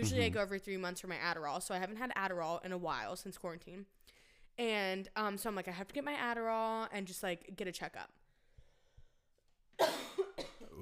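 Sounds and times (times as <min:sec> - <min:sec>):
speech: 0:00.0 - 0:08.2
loud harsh cough: 0:09.8 - 0:10.8.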